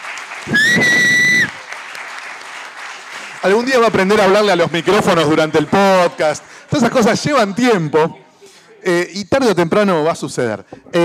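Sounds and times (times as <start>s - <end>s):
audience applause: 0.0s - 6.7s
speech: 3.4s - 8.2s, 8.8s - 11.0s.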